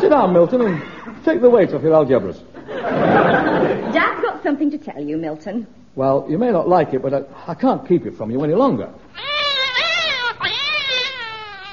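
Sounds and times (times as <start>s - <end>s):
speech: 0.0s - 9.3s
laughter: 2.6s - 4.3s
cat yowling with wavering pitch: 9.2s - 11.7s.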